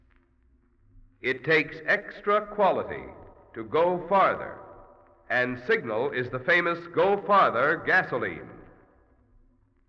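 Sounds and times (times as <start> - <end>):
speech: 1.2 - 4.6, 5.3 - 8.6
voice speaking a gasoline advertisement through an echo chamber: 1.3 - 8.6.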